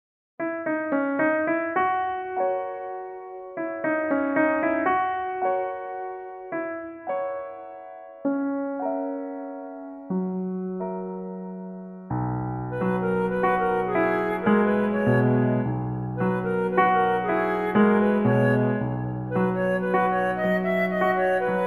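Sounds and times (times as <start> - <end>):
piano playing second flute part: 0.4 - 21.6.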